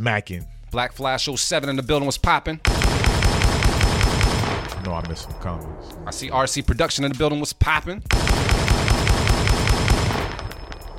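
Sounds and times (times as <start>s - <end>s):
speech: 0.0s - 3.2s, 4.8s - 9.3s
automatic gunfire: 2.7s - 4.9s, 8.1s - 10.9s.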